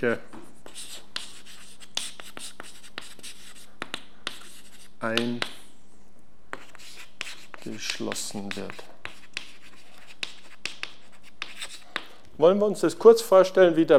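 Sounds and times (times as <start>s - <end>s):
speech: 0.0s - 0.9s, 5.0s - 5.6s, 7.6s - 8.9s, 12.4s - 13.9s
writing strokes scratching a surface during a lesson: 0.5s - 5.7s, 6.5s - 12.2s.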